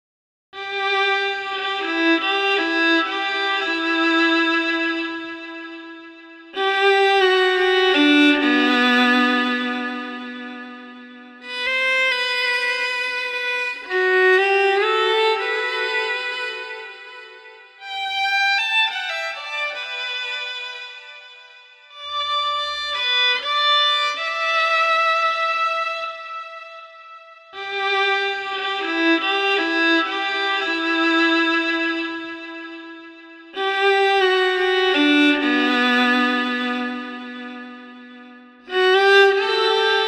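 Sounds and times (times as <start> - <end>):
somber violin: 0.6 - 40.0.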